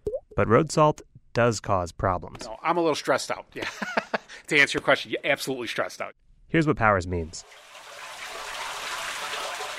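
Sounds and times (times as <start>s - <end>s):
speech: 0.4s - 7.7s
laughter: 3.6s - 4.4s
snowmelt runoff rushing and trickling into a storm drain: 7.4s - 9.7s.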